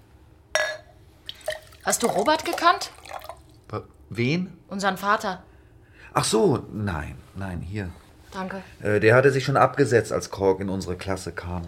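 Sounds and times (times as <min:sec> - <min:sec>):
glass clinking: 0:00.6 - 0:03.4
water poured into a glass: 0:01.2 - 0:03.7
speech: 0:01.8 - 0:03.0, 0:03.7 - 0:05.5, 0:06.1 - 0:11.6.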